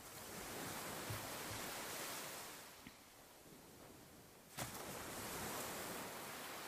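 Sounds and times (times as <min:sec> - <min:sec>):
wave splash: 0:00.0 - 0:02.9, 0:04.5 - 0:06.6
ocean waves rushing on shore: 0:00.0 - 0:06.6.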